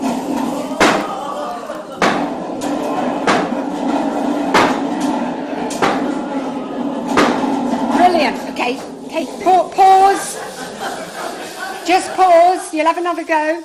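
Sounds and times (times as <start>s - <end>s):
loud sharp thunder bangs sound effect: 0.0s - 9.0s
laughter: 0.0s - 13.0s
steady murmur of noise: 0.0s - 13.6s
speech: 12.8s - 13.6s.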